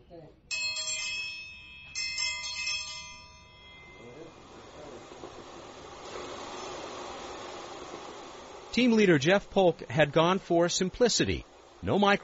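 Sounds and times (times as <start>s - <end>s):
low-tech bell ringing: 0.5s - 5.3s
rough mechanical rumble: 1.5s - 12.2s
speech: 8.8s - 12.2s.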